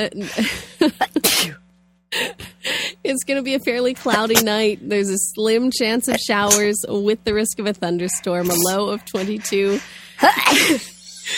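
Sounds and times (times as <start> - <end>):
speech: 0.0 - 1.1, 3.0 - 11.3
person sneezing: 1.2 - 1.6.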